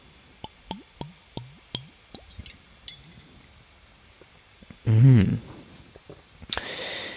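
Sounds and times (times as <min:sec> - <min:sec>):
person sipping and swallowing water from a glass: 0:00.4 - 0:02.6
breathy exhale: 0:06.6 - 0:07.1.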